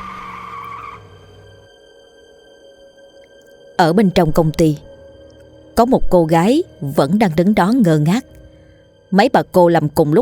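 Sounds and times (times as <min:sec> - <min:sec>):
pickup truck tires screeching as it fails to brake: 0:00.0 - 0:01.6
speech: 0:03.8 - 0:04.9, 0:05.8 - 0:08.4, 0:09.1 - 0:10.2.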